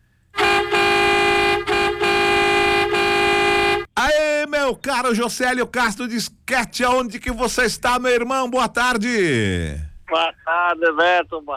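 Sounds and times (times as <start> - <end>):
vehicle horn honking: 0.4 - 3.9
speech: 4.7 - 11.5.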